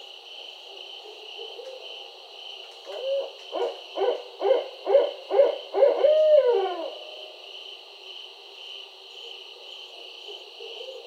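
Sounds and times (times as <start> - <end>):
barred owl hooting: 2.9 - 7.2.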